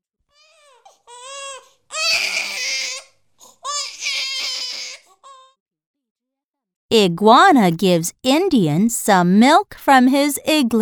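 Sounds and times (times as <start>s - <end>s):
baby crying in whimpering wails and strained cries: 0.3s - 5.6s
speech: 6.9s - 10.8s.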